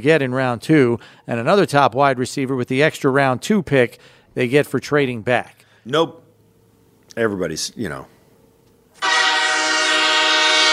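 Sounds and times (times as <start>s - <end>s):
speech: 0.0s - 6.2s, 7.2s - 8.1s
loud train horn blast: 9.0s - 10.7s.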